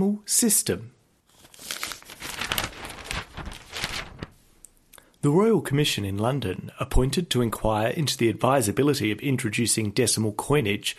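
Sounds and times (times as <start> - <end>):
speech: 0.0 - 1.0, 5.2 - 10.9
newspaper page being turned and crinkled: 1.3 - 4.5.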